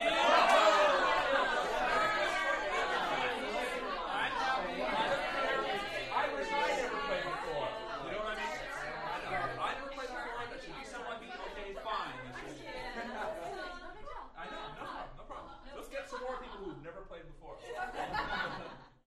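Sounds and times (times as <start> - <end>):
rowdy crowd yelling in a small interior: 0.0 - 9.5
laughter: 0.0 - 19.0.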